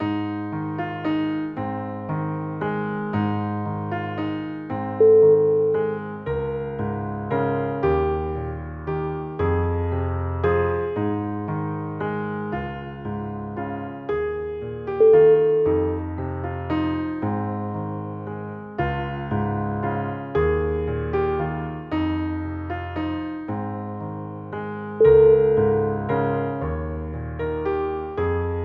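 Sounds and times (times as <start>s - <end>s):
Christmas carol on solo piano: 0.0s - 28.6s.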